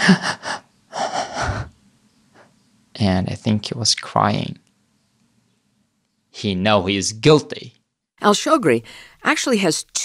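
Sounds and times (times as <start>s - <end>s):
man breathing very heavily: 0.0s - 1.7s
speech: 0.1s - 0.4s, 3.0s - 4.6s, 6.4s - 10.0s.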